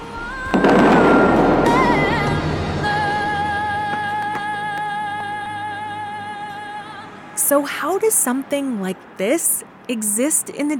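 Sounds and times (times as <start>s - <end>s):
loud boom of fountain jets: 0.2s - 4.7s
speech: 7.5s - 10.7s.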